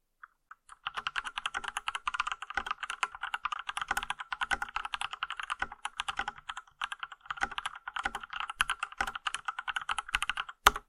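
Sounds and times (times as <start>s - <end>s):
typing: 0.6s - 10.8s.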